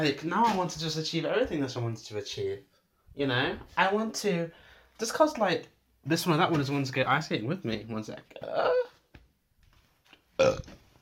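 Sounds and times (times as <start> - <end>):
speech: 0.0 - 8.8, 10.4 - 10.8
loud burp after drinking water: 10.4 - 10.8.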